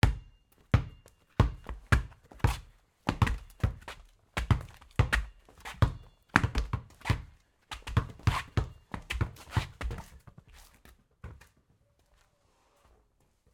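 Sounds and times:
basketball dribbling on cement in a street game: 0.0 - 11.6
shoes scraping on cement: 1.7 - 10.9.

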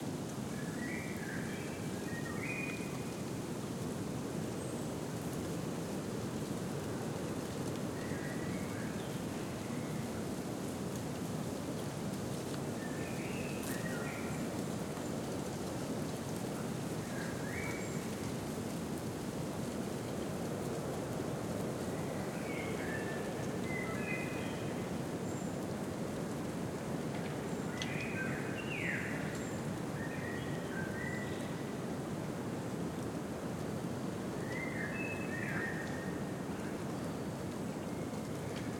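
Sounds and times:
gentle wind in a deciduous forest at noon in spring: 0.0 - 38.7
leaves rustling in a deciduous forest: 0.0 - 38.7.

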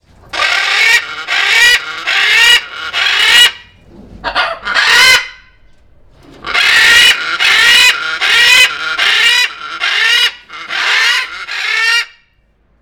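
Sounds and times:
stressed macaw shouting, close: 0.4 - 3.6, 6.5 - 12.2.

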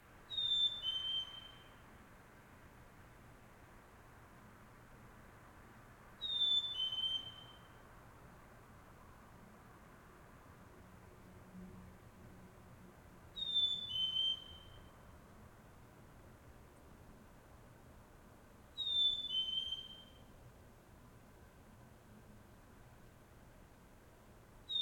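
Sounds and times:
solo bird call in a suburb in Montreal Canada in early morning: 0.3 - 1.8, 6.2 - 7.8, 13.4 - 14.9, 18.8 - 20.2.

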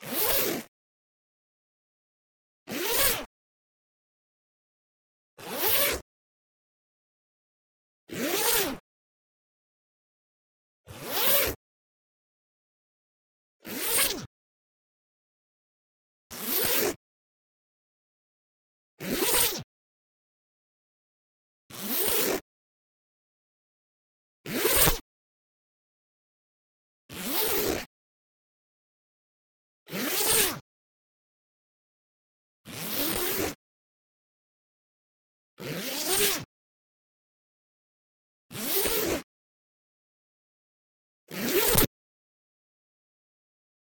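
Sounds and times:
wool coat metal zipper fast zips: 0.0 - 0.7, 2.7 - 3.3, 5.4 - 6.0, 8.2 - 8.8, 11.0 - 11.6, 13.7 - 14.3, 16.3 - 17.0, 19.0 - 19.7, 21.9 - 22.4, 24.4 - 25.0, 27.2 - 27.9, 30.0 - 30.6, 32.7 - 33.6, 35.6 - 36.5, 38.5 - 39.3, 41.3 - 41.9.

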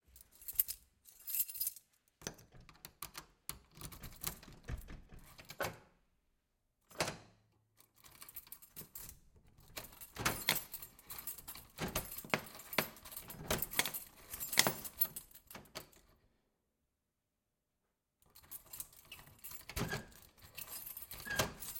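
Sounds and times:
key unlocking an armored metal and wood front door: 2.2 - 5.9, 6.9 - 16.2, 18.3 - 21.7.

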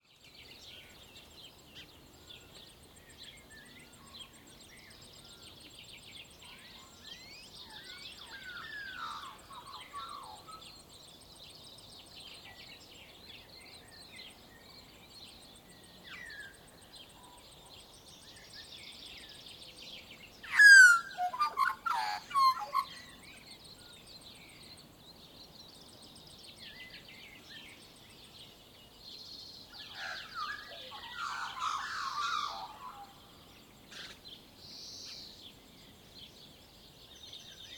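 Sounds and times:
dawn chorus birds on rural farmland in Waikato New Zealand: 0.2 - 37.7
magpie on rural farmland in Waikato New Zealand: 20.5 - 23.0.

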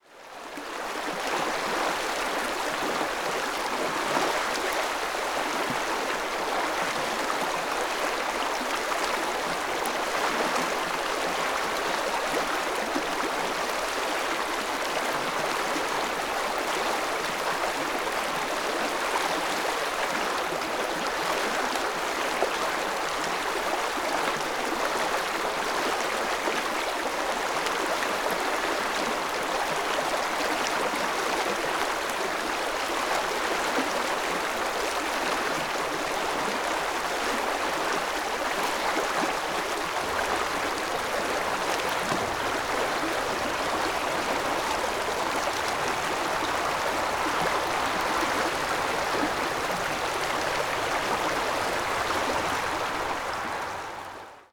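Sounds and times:
river with medium flow: 0.0 - 54.5.

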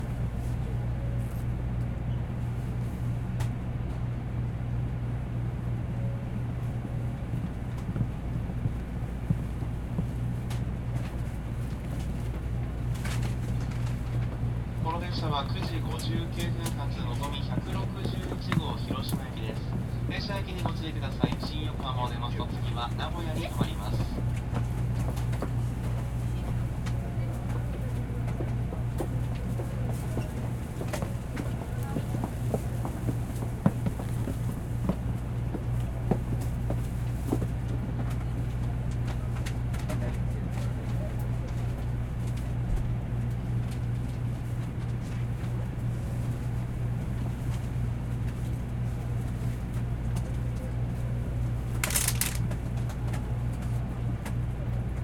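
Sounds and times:
passengers boarding bullet train passenger cabin in Japan: 0.0 - 55.0.

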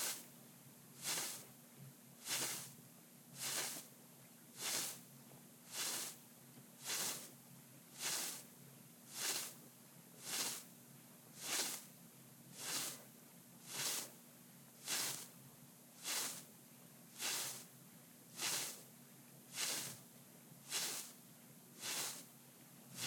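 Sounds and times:
medium hand on beard body foley: 1.0 - 1.4, 2.3 - 2.7, 3.4 - 3.8, 4.6 - 5.0, 5.7 - 6.2, 6.8 - 7.3, 8.0 - 8.4, 9.1 - 9.6, 10.2 - 10.7, 11.4 - 11.9, 12.6 - 13.0, 13.7 - 14.2, 14.8 - 15.3, 16.0 - 16.5, 17.2 - 17.7, 18.4 - 18.8, 19.6 - 20.0, 20.7 - 21.1, 21.8 - 22.3.

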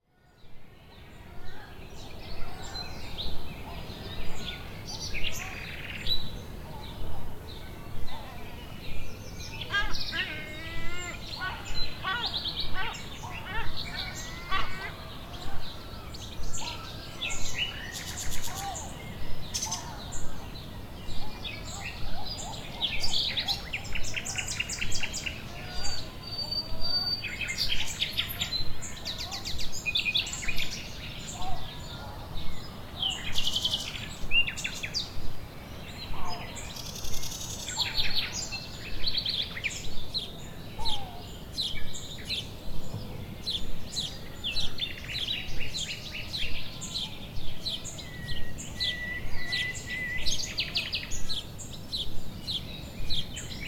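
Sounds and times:
nature ambience: 0.0 - 53.6
seagulls: 9.6 - 15.8.

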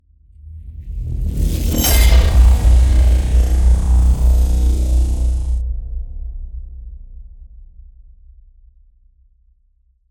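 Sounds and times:
cinematic hit: 1.4 - 6.6.

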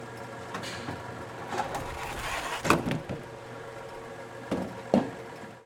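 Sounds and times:
bowling machinery ball return: 0.1 - 5.5.

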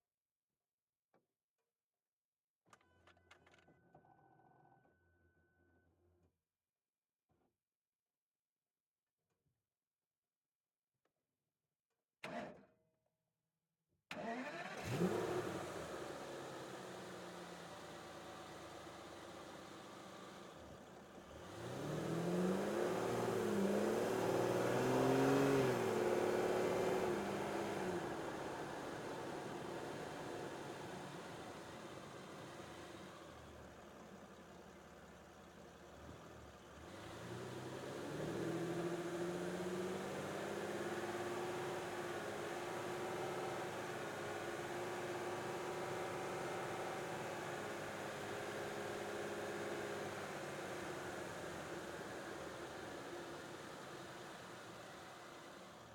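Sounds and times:
2005 Aston Martin DB9 engine onboard: 14.4 - 55.9.

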